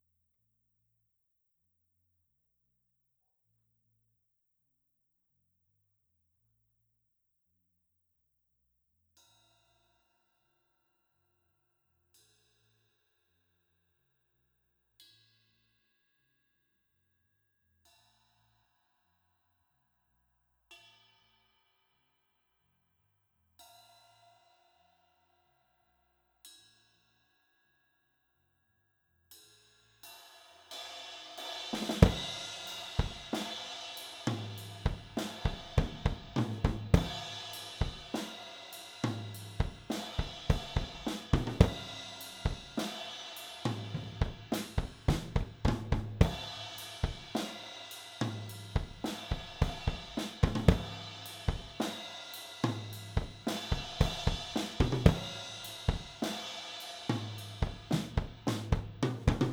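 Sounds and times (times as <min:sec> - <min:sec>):
drums: 0:29.3 - 0:59.5.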